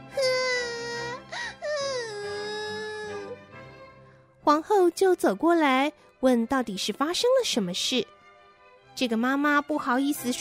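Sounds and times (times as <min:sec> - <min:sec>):
girl crying at a weaving loom: 0:00.0 - 0:03.4
speech: 0:04.5 - 0:08.1, 0:09.0 - 0:10.3.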